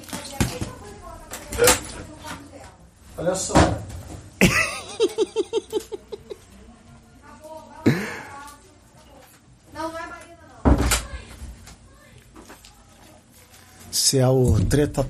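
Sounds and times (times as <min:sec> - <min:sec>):
woman and girls arguing with raised voices: 0:00.0 - 0:02.8, 0:09.7 - 0:12.4
speech: 0:03.2 - 0:03.9, 0:14.1 - 0:15.0
rapid laugh-like syllables: 0:04.4 - 0:06.4.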